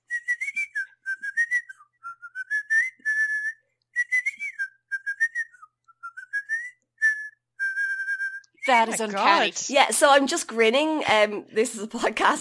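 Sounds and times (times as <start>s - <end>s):
person whistling a melodic tune through teeth: 0.0s - 9.0s
speech: 8.7s - 12.4s.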